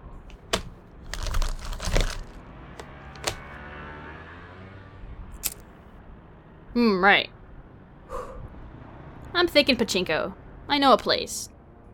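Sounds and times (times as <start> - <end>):
sharp clicks and knocks: 0.3 - 3.5
small objects clattering and rattling in a car's glove compartment: 0.3 - 3.5
speech: 6.8 - 7.4, 9.3 - 11.5.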